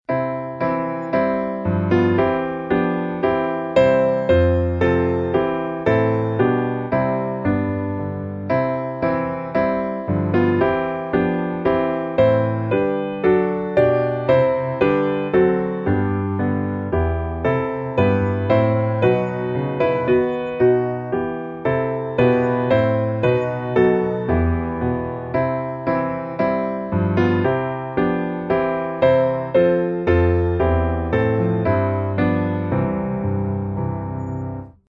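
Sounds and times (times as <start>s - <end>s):
piano: 0.0s - 34.8s.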